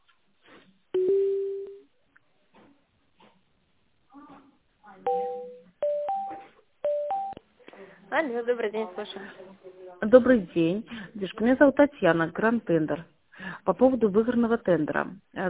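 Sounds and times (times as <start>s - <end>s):
faint talk: 4.1s - 5.1s
telephone line tones while a call is transferred: 5.1s - 7.4s
speech: 8.2s - 15.4s.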